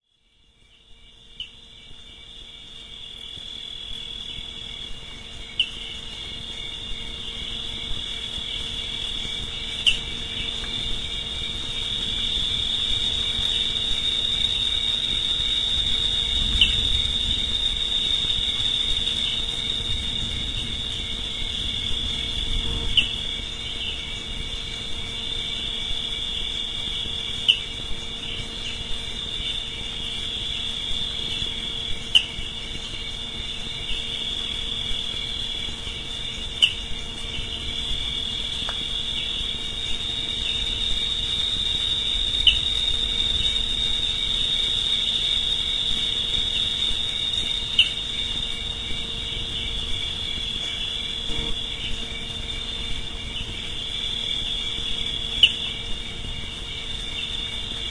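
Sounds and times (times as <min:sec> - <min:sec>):
cricket chirping: 0:00.0 - 0:57.8.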